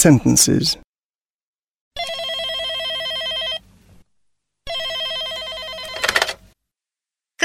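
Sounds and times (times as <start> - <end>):
speech: 0.0 - 0.8
telephone ringing with electronic trill: 2.0 - 3.7, 4.6 - 6.6.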